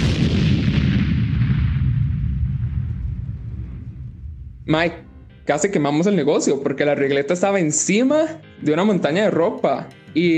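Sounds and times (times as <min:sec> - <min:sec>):
loud deep explosion boom with heavy rumble: 0:00.0 - 0:04.9
speech: 0:04.7 - 0:10.3.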